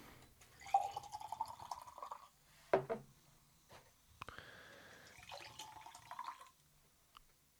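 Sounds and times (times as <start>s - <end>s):
drink poured from a can into a glass: 0.6s - 2.3s, 5.1s - 6.5s.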